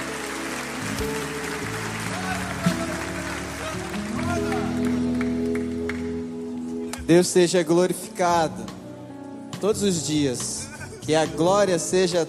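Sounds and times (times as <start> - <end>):
audience applauding: 0.0 - 7.1
sustained music: 0.0 - 12.2
speech: 1.0 - 1.5, 7.1 - 8.8, 9.6 - 12.2.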